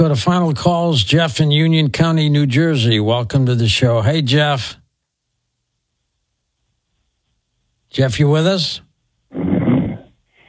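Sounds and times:
speech: 0.0 - 4.8, 7.9 - 9.5
man snoring over a muffled narrow-sounding phone line: 9.3 - 10.1.

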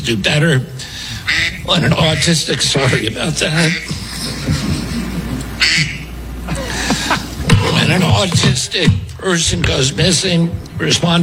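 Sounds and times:
speech: 0.0 - 0.9, 1.6 - 4.6, 7.9 - 11.2
laughter: 1.1 - 8.7
duck-quack ringtone on a man's phone: 1.2 - 3.9, 5.6 - 6.1.

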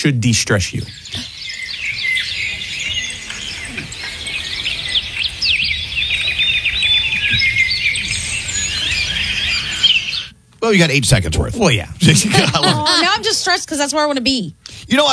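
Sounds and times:
speech: 0.0 - 1.3, 10.6 - 15.1
soft ambient hiss: 0.0 - 15.1
birds singing and chirping outdoors: 0.7 - 10.4
low outdoor rumble: 2.0 - 14.5
laughter: 12.0 - 13.5.

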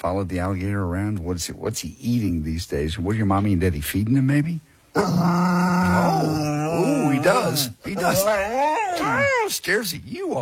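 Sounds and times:
speech: 0.0 - 10.4
dog growling: 5.0 - 9.6.

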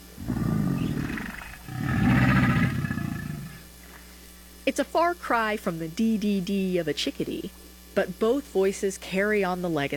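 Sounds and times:
American alligator growling: 0.2 - 3.7
speech: 4.7 - 9.9.

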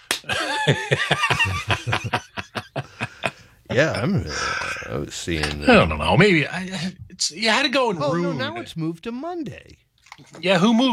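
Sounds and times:
hand slapping a person: 0.0 - 0.3
snickering laughter: 0.3 - 3.4
speech: 0.7 - 2.2, 3.7 - 9.8, 10.4 - 10.9.

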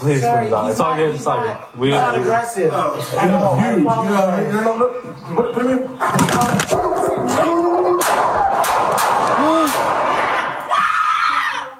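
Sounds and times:
people talking urgently: 0.0 - 11.7
people shouting: 7.0 - 11.7
gunshots fired by a police officer: 7.9 - 10.7.

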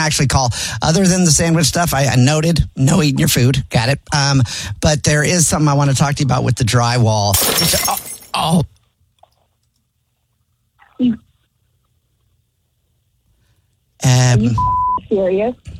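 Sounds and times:
speech: 0.0 - 8.7, 11.0 - 11.2, 14.0 - 15.7
glass dropping and breaking: 7.3 - 8.6.

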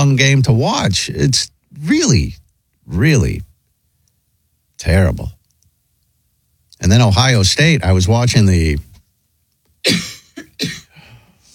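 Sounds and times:
speech: 0.0 - 3.5, 4.8 - 5.4, 6.8 - 8.9, 9.8 - 10.8
person coughing harshly: 9.8 - 11.2
faint breathy noise: 10.9 - 11.5.

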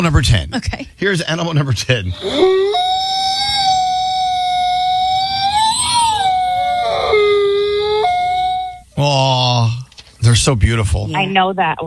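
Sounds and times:
speech: 0.0 - 3.4, 9.0 - 11.8
wolf howling: 2.1 - 9.0.

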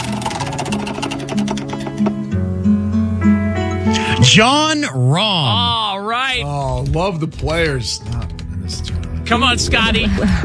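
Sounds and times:
spinning wheel ticking: 0.1 - 3.4
speech: 4.3 - 10.4.

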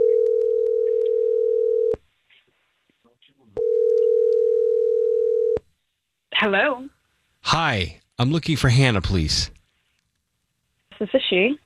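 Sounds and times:
phone line ringback tone while placing a call: 0.0 - 2.0, 3.6 - 5.6
speech: 6.4 - 9.6, 11.0 - 11.6.

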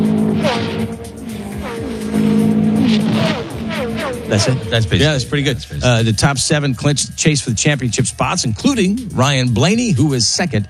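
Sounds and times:
race car tire squeal during a brake lockup: 0.0 - 5.8
race car engines roaring past at Loudon: 0.0 - 7.4
speech: 4.3 - 10.6.

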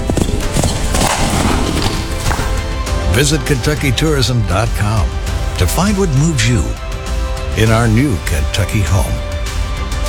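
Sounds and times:
horse hooves clip-clopping: 0.0 - 2.9
speech: 3.2 - 6.9, 7.6 - 9.3.

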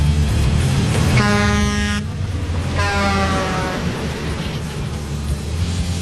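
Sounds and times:
low engine rumble: 0.0 - 5.9
truck air horn blasts: 1.1 - 4.0.

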